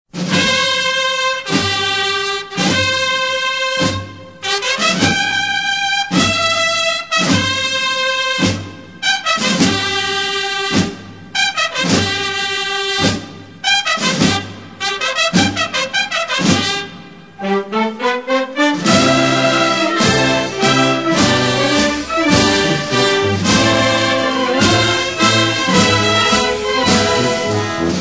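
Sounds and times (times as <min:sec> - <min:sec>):
funeral march music: 0:00.2 - 0:27.9.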